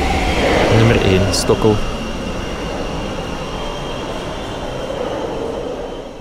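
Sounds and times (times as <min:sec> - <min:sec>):
high metallic whine of metro train: 0:00.0 - 0:06.1
metro train rumbling into an underground station: 0:00.0 - 0:06.1
speech: 0:00.8 - 0:01.9.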